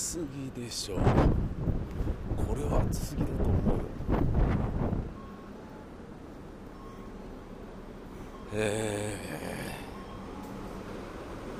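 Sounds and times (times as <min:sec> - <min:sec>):
traffic rumble: 0:00.0 - 0:11.5
wind: 0:00.0 - 0:11.5
speech: 0:00.1 - 0:05.2, 0:08.5 - 0:09.5
railroad crossing warning bell clanging outdoors: 0:09.9 - 0:11.5.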